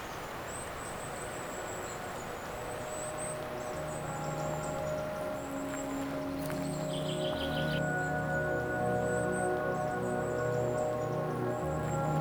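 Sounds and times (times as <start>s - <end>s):
birds chirping and trilling in a forest: 0.2s - 12.1s.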